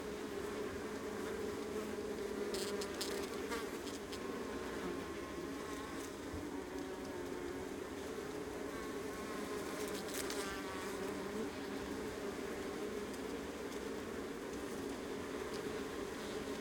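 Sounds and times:
honey bee colony humming on the Adriatic coast: 0.0s - 16.5s.

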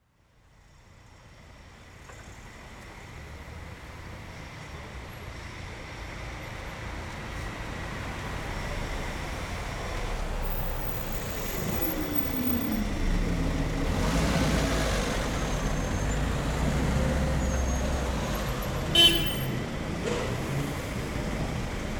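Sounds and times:
cars on a city street: 5.8s - 21.9s
car horn on a city street: 18.9s - 19.6s.

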